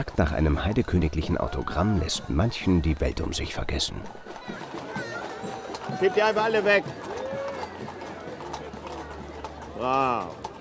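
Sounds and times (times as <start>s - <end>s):
speech: 0.0s - 4.7s, 5.9s - 7.1s, 9.8s - 10.4s
horse hooves clip-clopping through a crowd at a public event: 0.0s - 10.5s.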